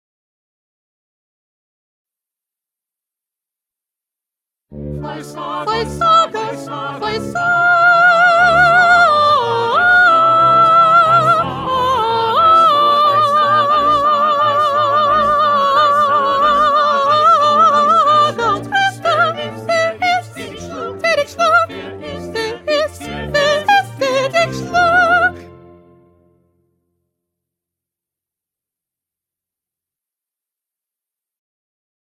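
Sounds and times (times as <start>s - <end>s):
second soprano singing: 4.9s - 25.5s.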